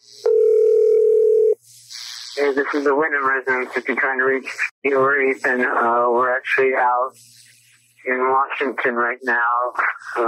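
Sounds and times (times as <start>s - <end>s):
home phone answering machine electronic tone: 0.2s - 1.6s
faint hiss: 1.6s - 10.2s
speech: 2.4s - 7.4s, 8.0s - 10.2s.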